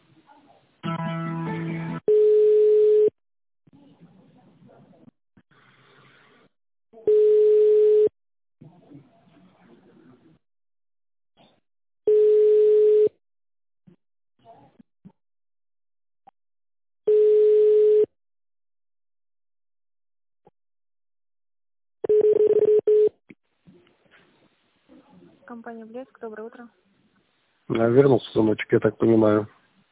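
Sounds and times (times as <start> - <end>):
telephone beeps while a call is transferred to another department: 2.1 - 3.1, 7.1 - 8.1, 12.1 - 13.1, 17.1 - 18.1, 22.0 - 23.1
speech: 25.6 - 26.9, 27.7 - 29.6.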